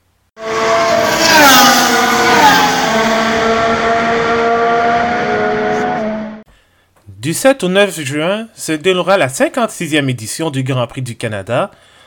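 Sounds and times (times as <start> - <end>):
Formula 1 race car engines revving at race start: 0.4 - 6.4
speech: 7.3 - 12.0.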